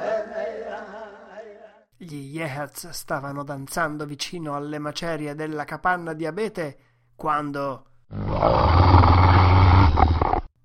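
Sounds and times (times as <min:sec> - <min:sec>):
speech: 0:02.0 - 0:09.2
enraged dog roaring: 0:08.1 - 0:10.5.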